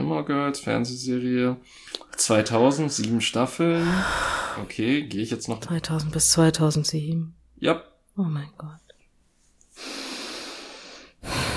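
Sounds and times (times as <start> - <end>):
speech: 0.1 - 8.8
heavy breathing from a person: 3.8 - 4.8, 9.7 - 11.5.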